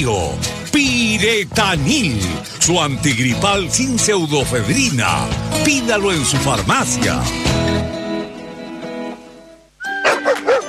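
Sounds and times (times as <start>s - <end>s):
speech: 0.0s - 7.6s
dogs barking and yipping excitedly: 9.9s - 10.6s.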